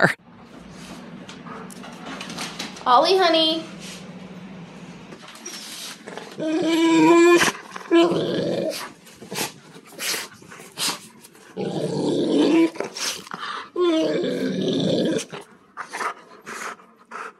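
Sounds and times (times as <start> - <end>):
speech: 0.0 - 0.3, 2.8 - 3.8, 6.1 - 9.4, 11.6 - 13.1
dog grunting and moaning with pleasure: 6.0 - 9.6, 10.2 - 17.3.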